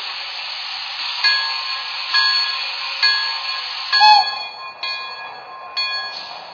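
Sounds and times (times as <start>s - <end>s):
steady hiss of air from a stopped passenger train: 0.0s - 4.6s
ringing metallic tones from a stopped passenger train: 1.3s - 6.5s.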